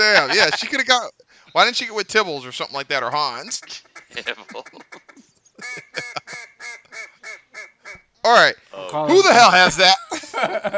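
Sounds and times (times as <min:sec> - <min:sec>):
laughter: 0:00.0 - 0:00.9, 0:03.0 - 0:07.4, 0:08.9 - 0:10.7
speech: 0:00.1 - 0:06.1, 0:08.2 - 0:10.7
duck call quacking: 0:03.1 - 0:08.0.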